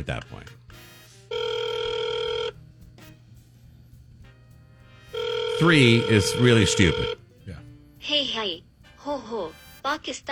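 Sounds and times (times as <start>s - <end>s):
speech: 0.0s - 0.6s, 5.6s - 10.2s
telephone bell ringing: 1.3s - 2.6s, 5.1s - 7.2s.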